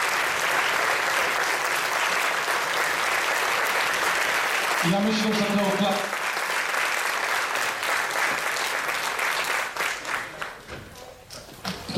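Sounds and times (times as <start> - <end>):
crowd applauding: 0.0 - 10.7
speech: 4.8 - 6.2.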